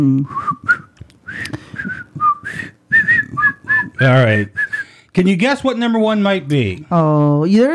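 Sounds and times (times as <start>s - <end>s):
speech: 0.0s - 1.6s, 4.0s - 4.6s, 5.2s - 7.7s
person whistling a bouncy TV-style theme melody: 0.2s - 4.9s.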